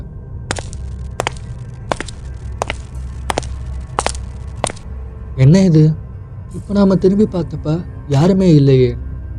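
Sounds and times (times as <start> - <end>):
footsteps walking at a slow even pace: 0.5 - 4.8
speech: 5.4 - 9.0.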